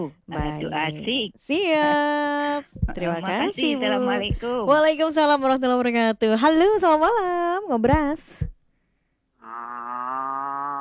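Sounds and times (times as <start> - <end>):
speech: 0.0 - 8.6
cow loose from its pen mooing: 9.4 - 10.7.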